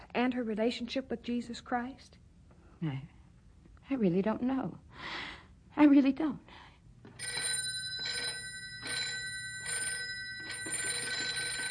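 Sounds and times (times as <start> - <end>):
speech: 0.2 - 2.2, 2.8 - 3.2, 3.9 - 6.6
telephone bell ringing: 7.1 - 11.6.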